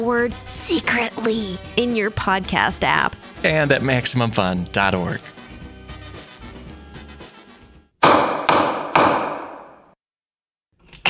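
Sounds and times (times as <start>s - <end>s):
speech: 0.0s - 5.3s
music: 0.0s - 8.0s
wooden gavel striking: 8.0s - 9.8s.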